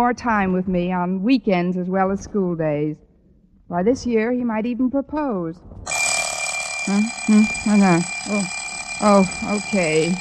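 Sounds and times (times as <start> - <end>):
speech: 0.0 - 3.0, 3.7 - 5.9, 6.9 - 10.2
alarm clock ringing in warbling tonal bursts: 5.9 - 10.2.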